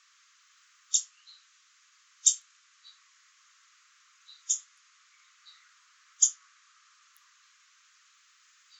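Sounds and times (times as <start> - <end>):
Ovenbird Seiurus aurocapilla singing: 0.9 - 1.4, 4.3 - 6.4.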